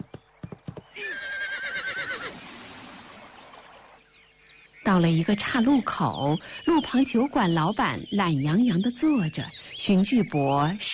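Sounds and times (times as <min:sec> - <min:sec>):
horse hoof clops: 0:00.0 - 0:01.1
horse neighing: 0:00.9 - 0:02.4
speech: 0:01.0 - 0:01.4, 0:04.8 - 0:10.9.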